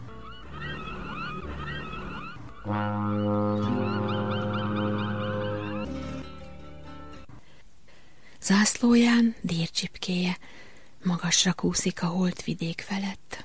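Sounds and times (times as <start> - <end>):
birds chirping and twittering: 0.0 - 6.5
large ship's horn blast: 1.4 - 6.4
speech: 2.6 - 3.3, 8.5 - 13.4.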